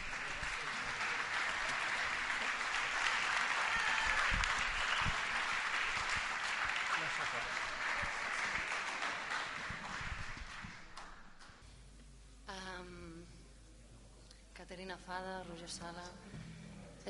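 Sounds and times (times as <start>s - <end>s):
audience applause at an event in Barcelona: 0.0s - 11.2s
speech: 15.0s - 16.3s.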